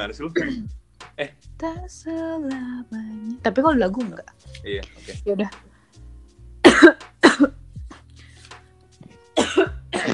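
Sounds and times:
speech: 0:00.0 - 0:05.7
person coughing: 0:00.4 - 0:00.7, 0:06.6 - 0:07.6, 0:09.4 - 0:10.1.

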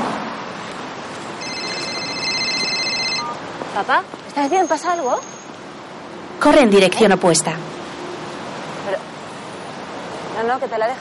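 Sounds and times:
mobile phone ringtone muffled in a bag: 0:01.4 - 0:03.4
speech: 0:03.8 - 0:05.4, 0:06.4 - 0:07.8, 0:10.4 - 0:10.9.

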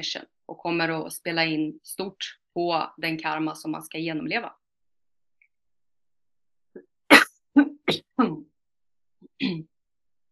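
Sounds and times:
speech: 0:00.0 - 0:04.6, 0:07.6 - 0:08.5, 0:09.4 - 0:09.7
person sneezing: 0:07.1 - 0:07.3.

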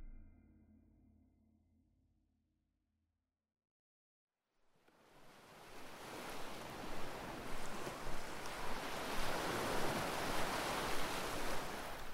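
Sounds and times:
storm waves crashing against a ship hull: 0:05.3 - 0:12.1
wind noise: 0:05.8 - 0:12.1.

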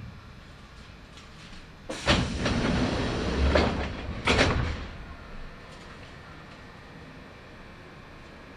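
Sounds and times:
pneumatic hisses and thuds of train doors: 0:01.9 - 0:04.4
train doors sliding open at a station: 0:01.9 - 0:06.1.

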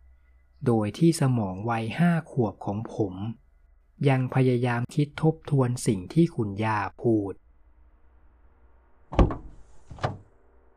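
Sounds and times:
speech: 0:00.6 - 0:03.4, 0:04.0 - 0:07.4
car door lock clunks in cold weather: 0:09.2 - 0:10.3.

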